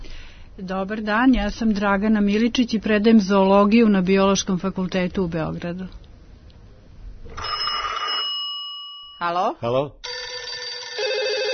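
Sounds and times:
speech: 0.6s - 6.0s, 9.2s - 10.1s
telephone bell ringing: 7.4s - 9.2s, 10.0s - 11.5s.

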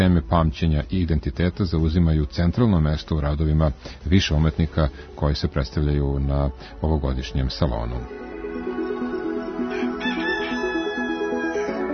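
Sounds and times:
speech: 0.0s - 8.2s
roosters crowing in the morning: 8.6s - 11.9s.

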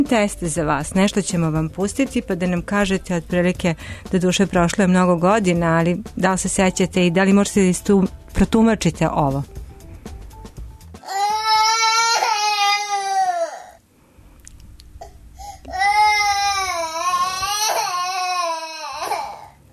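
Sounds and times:
speech: 0.0s - 9.6s
baby crying: 11.0s - 13.8s, 15.0s - 19.6s.

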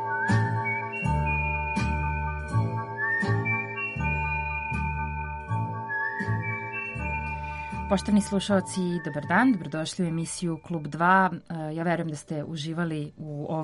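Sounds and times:
person whistling a signal tune inside a song: 0.0s - 8.1s
steady rhythmic music with regular beats: 0.0s - 11.2s
speech: 7.9s - 13.6s.

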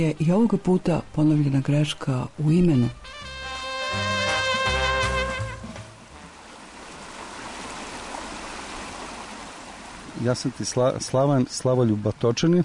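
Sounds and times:
speech: 0.0s - 3.3s, 3.9s - 4.2s, 10.2s - 12.6s
flowing river water rushing: 0.0s - 12.6s
brief tonal music-like sound: 2.9s - 6.0s.

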